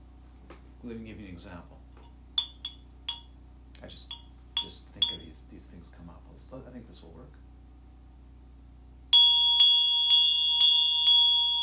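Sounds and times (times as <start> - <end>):
speech: 0.8 - 1.8, 3.8 - 7.4
small bell struck with bright metallic dings: 2.4 - 3.3, 4.1 - 5.3, 9.2 - 11.6.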